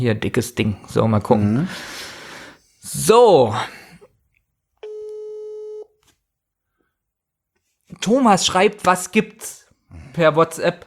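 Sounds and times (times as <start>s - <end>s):
speech: 0.0s - 2.0s, 2.8s - 3.8s, 8.0s - 10.8s
telephone ringback tone while placing a call: 4.8s - 5.9s.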